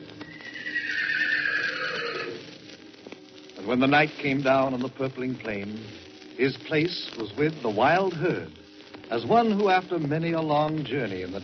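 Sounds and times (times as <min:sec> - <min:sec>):
horse giving a long bugling neigh: 0:00.3 - 0:02.4
speech: 0:03.7 - 0:11.4.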